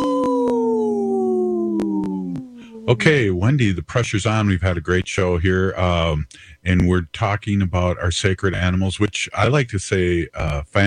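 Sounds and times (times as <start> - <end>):
wolf howling: 0.0 - 3.4
speech: 2.9 - 10.8.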